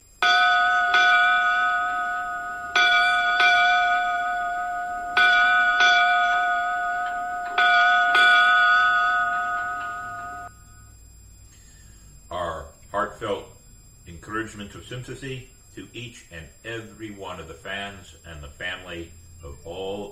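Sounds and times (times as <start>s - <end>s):
ceremonial bells rung as a memorial tribute to deceased former football players: 0.2s - 10.9s
speech: 14.6s - 19.2s.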